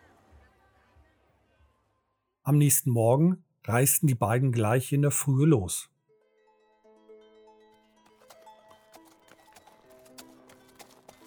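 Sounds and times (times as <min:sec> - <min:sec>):
speech: 0:02.5 - 0:05.9
horse hooves clip-clopping with one horse carrying two riders: 0:08.0 - 0:11.2.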